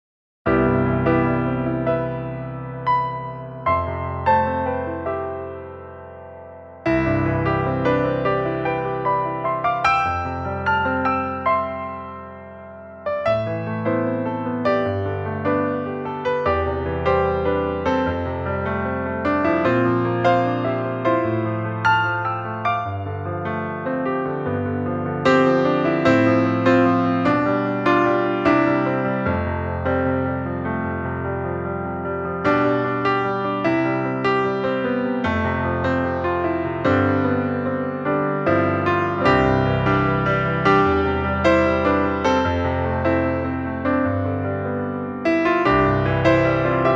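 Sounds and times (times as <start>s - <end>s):
classical music: 0.5s - 46.9s.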